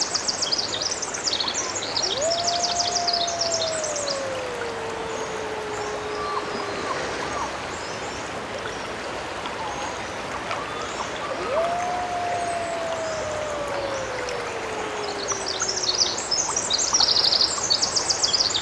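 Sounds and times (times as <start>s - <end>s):
steady rush of water: 0.0s - 18.6s
wolf howling in Glacier Bay: 2.0s - 7.7s, 11.2s - 17.5s.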